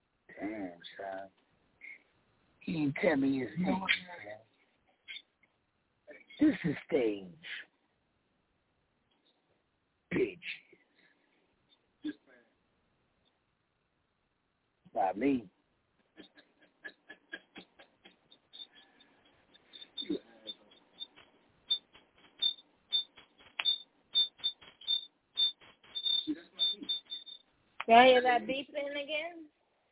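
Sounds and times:
speech: 0.4s - 1.4s, 2.6s - 4.2s, 6.4s - 7.6s, 15.0s - 15.5s, 27.9s - 29.5s
laughter: 16.0s - 18.9s
short electronic beeps: 18.4s - 27.4s.

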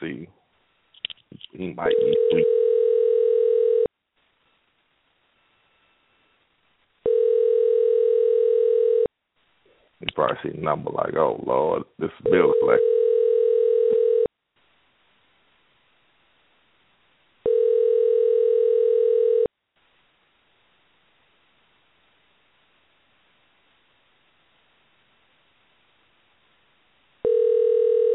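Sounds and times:
speech: 1.6s - 2.6s, 10.2s - 13.0s
telephone sounding an unusual single-pitched electronic tone: 1.9s - 3.9s, 7.1s - 9.1s, 12.3s - 14.3s, 17.5s - 19.5s, 27.2s - 28.1s.

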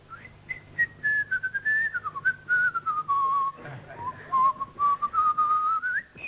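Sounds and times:
faint low hum: 0.0s - 6.2s
person whistling a melodic tune: 0.1s - 6.2s.

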